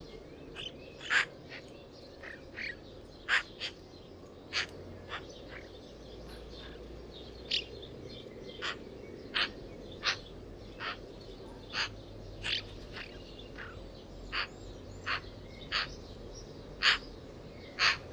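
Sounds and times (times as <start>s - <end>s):
Eurasian magpie Pica pica calling: 2.2s - 3.8s, 4.5s - 5.7s, 7.5s - 7.7s, 8.6s - 16.0s, 16.8s - 17.1s, 17.7s - 18.1s.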